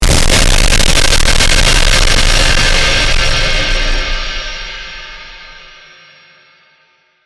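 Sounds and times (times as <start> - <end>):
laser destroy effect: 0.0 - 5.7.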